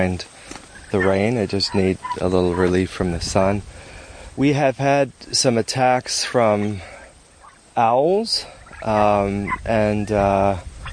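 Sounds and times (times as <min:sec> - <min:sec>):
speech: 0:00.0 - 0:06.9, 0:07.8 - 0:10.7
turkeys gobbling outdoors under a shade cloth: 0:00.4 - 0:03.6, 0:06.0 - 0:10.9.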